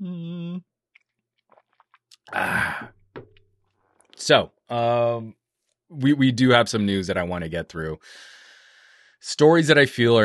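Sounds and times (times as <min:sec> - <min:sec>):
short hummed voice sounds: 0:00.0 - 0:00.6
person slurping a sip of a drink: 0:01.4 - 0:03.0
person gulping: 0:01.4 - 0:03.4
speech: 0:02.2 - 0:02.9, 0:04.3 - 0:08.4, 0:09.2 - 0:10.2.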